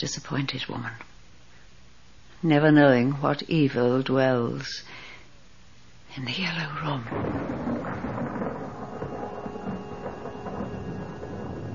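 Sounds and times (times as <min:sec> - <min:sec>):
speech: 0:00.0 - 0:01.1, 0:02.4 - 0:05.0, 0:06.1 - 0:07.5
thunder rumbling before a storm: 0:07.0 - 0:11.7.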